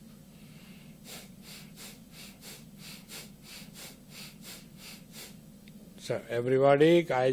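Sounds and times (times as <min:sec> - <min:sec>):
mild bhastrika yoga bellows breathing: 0:00.4 - 0:05.5
speech: 0:06.1 - 0:07.3.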